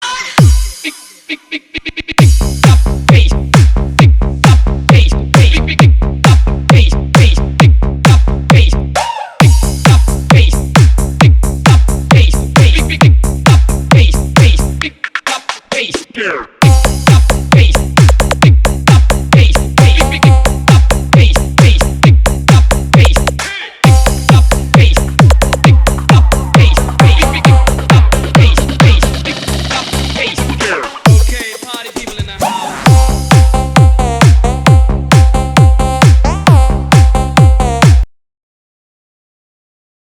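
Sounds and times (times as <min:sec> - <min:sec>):
powerful booming bass beat: 0:00.4 - 0:00.8, 0:02.2 - 0:38.1.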